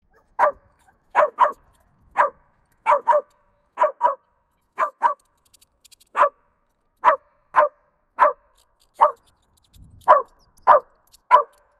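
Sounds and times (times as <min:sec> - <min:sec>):
dog barking excitedly at a squirrel: 0:00.1 - 0:05.3, 0:06.1 - 0:06.4, 0:07.0 - 0:09.3, 0:10.0 - 0:11.7.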